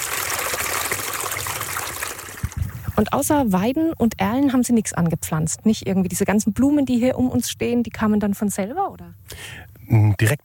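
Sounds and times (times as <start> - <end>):
clear gurgling brook flowing: 0.0 - 3.0
speech: 3.0 - 10.4.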